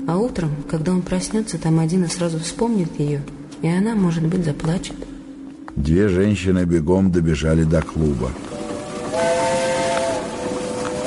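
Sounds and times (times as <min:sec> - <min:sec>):
speech: 0:00.1 - 0:05.2, 0:05.8 - 0:08.5
local train passing: 0:07.3 - 0:11.0
local train whistle: 0:08.5 - 0:11.0.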